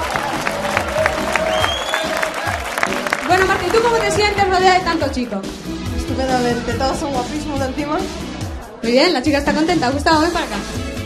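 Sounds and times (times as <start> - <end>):
faint cheer from a studio audience: 0.0 - 4.2
studio audience applauding on a televised music show: 0.0 - 4.6
speech: 3.6 - 10.9.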